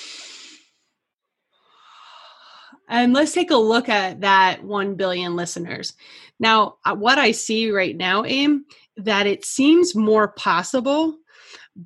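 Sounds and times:
deep breath in: 0:00.0 - 0:00.8, 0:01.6 - 0:02.8
speech: 0:02.8 - 0:11.8.

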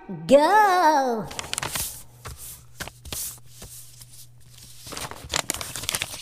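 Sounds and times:
speech: 0:00.1 - 0:01.8
sheet of paper being folded: 0:01.3 - 0:06.2.

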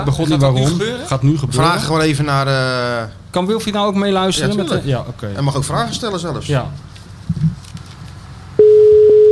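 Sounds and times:
speech: 0:00.0 - 0:06.9
steady telephone tone while placing a call: 0:08.6 - 0:09.2.

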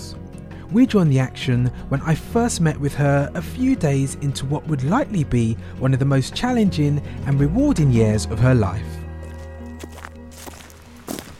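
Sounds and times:
speech: 0:00.7 - 0:09.0
faint footsteps walking up to a farmhouse in Snowdonia North Wales: 0:09.2 - 0:11.3.

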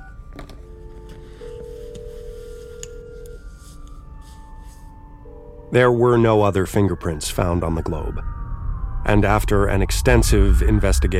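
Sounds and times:
speech: 0:00.4 - 0:00.6, 0:05.7 - 0:08.4, 0:09.1 - 0:11.1
electronic phone keypad dialing tones: 0:01.4 - 0:03.4
low constant rumble: 0:05.2 - 0:11.1.

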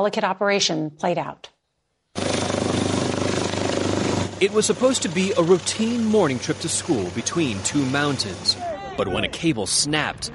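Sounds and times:
speech: 0:00.0 - 0:01.5, 0:04.4 - 0:10.3
helicopter engine roar: 0:02.2 - 0:08.6
helicopter rotor chopping: 0:02.2 - 0:10.3.

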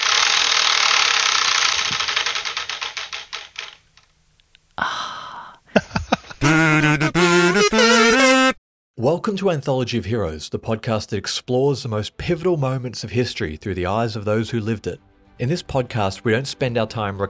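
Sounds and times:
game show prize wheel spinning and ticking: 0:00.0 - 0:03.8
laughter: 0:05.7 - 0:08.1
speech: 0:09.0 - 0:17.2.

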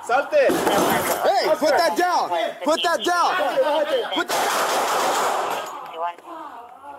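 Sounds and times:
speech: 0:00.1 - 0:06.5
laughter: 0:00.5 - 0:04.6
gunfire from police officers shooting at a man: 0:04.2 - 0:05.8.

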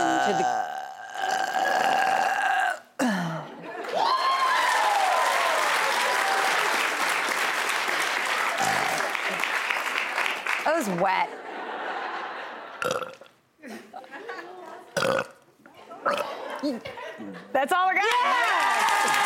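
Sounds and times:
long loud belch: 0:00.0 - 0:03.4, 0:08.6 - 0:09.2, 0:12.8 - 0:13.3, 0:15.0 - 0:15.4, 0:16.0 - 0:16.3
speech: 0:00.2 - 0:00.6, 0:10.9 - 0:11.4, 0:17.6 - 0:19.2
audience applauding and cheering: 0:03.8 - 0:11.0, 0:18.0 - 0:19.2
laughter: 0:11.2 - 0:12.8, 0:13.6 - 0:15.0, 0:15.7 - 0:17.6.

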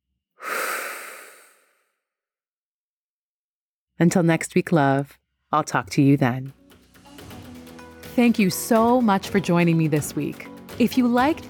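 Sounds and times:
deep breath in and out: 0:00.4 - 0:01.9
speech: 0:04.0 - 0:06.6, 0:08.2 - 0:11.4.

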